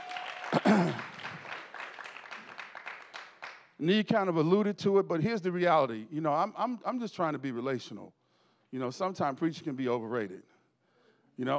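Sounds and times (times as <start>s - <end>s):
church audience clapping: 0.0s - 3.9s
speech: 3.8s - 10.5s, 11.4s - 11.5s.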